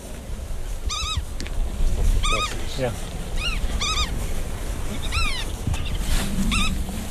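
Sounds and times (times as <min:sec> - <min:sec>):
steady low rumble: 0:00.0 - 0:07.0
black-tailed godwit calling in a breeding area: 0:00.8 - 0:01.4, 0:02.2 - 0:06.8.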